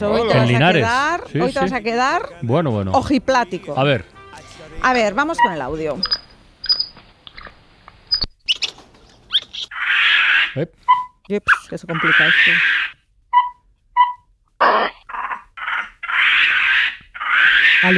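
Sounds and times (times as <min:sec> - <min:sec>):
speech: 0:00.0 - 0:04.1, 0:04.8 - 0:06.2, 0:10.6 - 0:12.8
capuchin monkeys screeching and chirping: 0:08.1 - 0:17.9.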